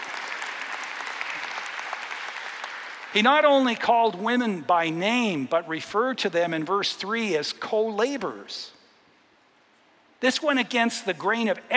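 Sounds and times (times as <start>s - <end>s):
audience clapping: 0.0s - 3.8s
speech: 3.1s - 8.8s, 10.2s - 11.7s.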